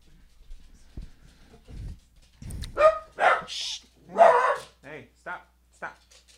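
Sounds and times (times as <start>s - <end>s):
shuffling noises: 0.0s - 3.8s
dog barking: 2.8s - 4.8s.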